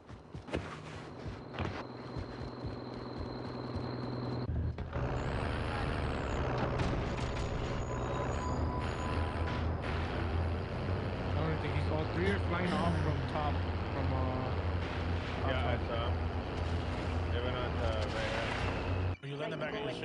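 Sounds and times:
heavy truck engine in a video game rumbling: 0.2s - 19.2s.

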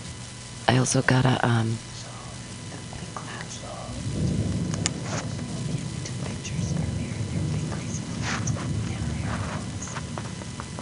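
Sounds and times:
steady rain hissing: 0.0s - 10.7s
speech: 0.7s - 1.9s
sharp crackles of thunder: 1.8s - 10.7s
deep rolling thunder during a thunderstorm: 2.9s - 10.7s.

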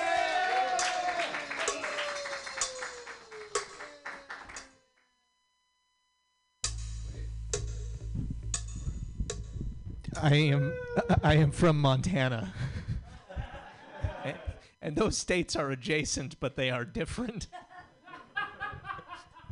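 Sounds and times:
small group clapping hands: 0.0s - 4.8s
low rumble: 6.6s - 13.1s
speech: 10.2s - 12.6s, 14.3s - 17.6s
laughter: 10.6s - 11.7s, 12.4s - 14.7s, 17.5s - 19.5s.

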